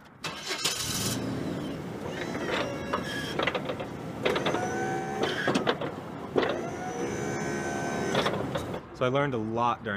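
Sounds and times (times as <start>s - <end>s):
snow plow truck engine starting and running: 0.0s - 8.9s
rising mechanical whines of a snow plow truck: 0.5s - 8.8s
speech: 9.0s - 9.9s.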